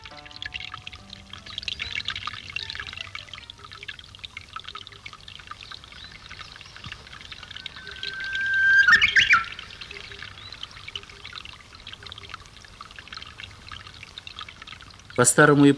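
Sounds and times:
Japanese nightingale singing: 0:00.0 - 0:12.6
watery rushing: 0:00.0 - 0:15.7
speech: 0:15.2 - 0:15.7.

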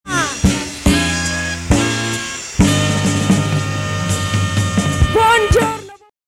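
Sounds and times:
tenor saxophone playing a fanfare: 0:00.0 - 0:06.1
trumpet fanfare: 0:00.1 - 0:06.1.

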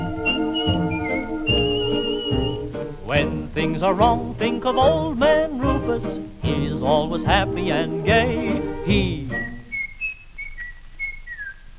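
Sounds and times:
person whistling a tune: 0:00.0 - 0:02.7, 0:07.6 - 0:11.6
instrumental accompaniment: 0:00.0 - 0:09.6
speech: 0:03.1 - 0:09.3.

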